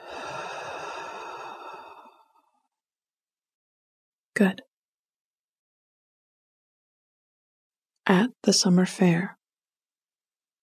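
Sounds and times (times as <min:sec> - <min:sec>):
person breathing out through the mouth during a guided breathing exercise: 0:00.0 - 0:02.5
speech: 0:04.4 - 0:04.7, 0:08.1 - 0:09.4.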